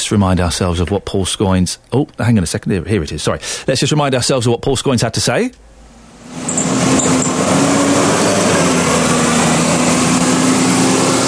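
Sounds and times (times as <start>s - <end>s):
speech: 0.1s - 5.7s
bus engine driving past a bus stop: 6.1s - 11.2s.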